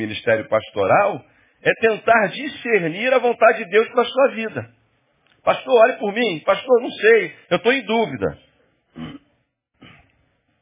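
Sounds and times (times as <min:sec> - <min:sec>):
speech: 0:00.0 - 0:04.8, 0:05.4 - 0:09.1
person clearing throat: 0:08.9 - 0:10.2.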